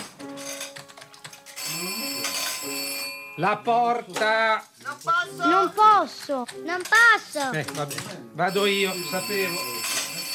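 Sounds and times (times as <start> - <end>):
electronic telephone ringtone trilling: 1.5 - 3.6, 8.4 - 10.3
speech: 3.4 - 9.8.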